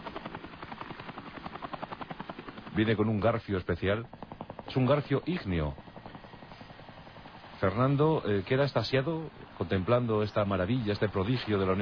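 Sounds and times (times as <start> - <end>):
Mi-8 helicopter buzzing engine drone: 0.0 - 11.7
old Soviet Mi-8 helicopter rotor blades thudding: 0.0 - 11.7
speech: 2.8 - 5.8, 7.6 - 11.7.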